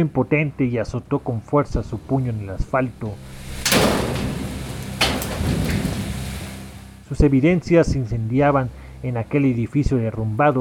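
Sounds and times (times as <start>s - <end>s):
speech: 0.0s - 4.1s, 7.1s - 10.5s
heavy rain: 3.2s - 6.9s
loud crashes: 3.2s - 7.0s.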